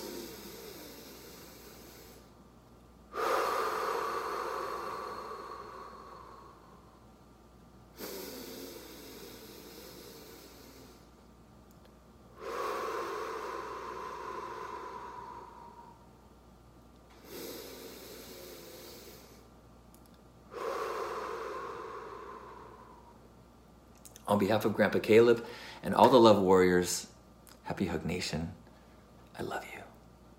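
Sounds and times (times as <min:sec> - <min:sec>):
deep slow breaths in through the nose during a guided calming exercise: 0:03.1 - 0:06.8, 0:08.0 - 0:11.2, 0:12.4 - 0:16.1, 0:17.2 - 0:19.5, 0:20.5 - 0:23.2
speech: 0:24.3 - 0:27.1, 0:27.7 - 0:28.6, 0:29.4 - 0:29.8.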